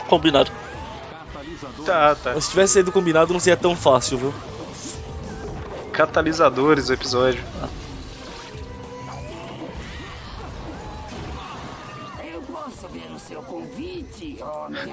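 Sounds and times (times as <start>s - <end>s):
speech: 0.1s - 0.8s, 1.4s - 4.9s, 6.0s - 7.8s
cartoon bomb explosion: 9.7s - 12.2s.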